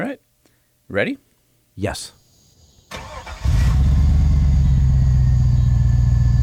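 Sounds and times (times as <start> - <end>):
speech: 0.0 - 0.3, 0.9 - 2.2
car engine cranking: 2.9 - 5.1
car engine revving through cat-back exhaust with deep throaty rumble: 3.4 - 6.4.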